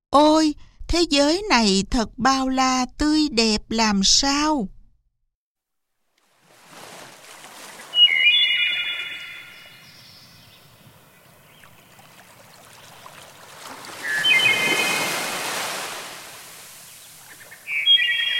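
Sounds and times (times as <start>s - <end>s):
speech: 0.1s - 4.8s
ocean waves surging: 6.1s - 18.3s
bright bird calls chirping: 7.9s - 15.4s, 16.8s - 18.3s.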